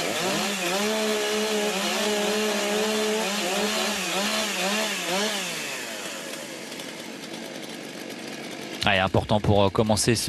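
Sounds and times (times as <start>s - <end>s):
chainsaw cutting a round from a wooden log at a timber-sports competition: 0.0s - 9.9s
speech: 8.9s - 10.2s.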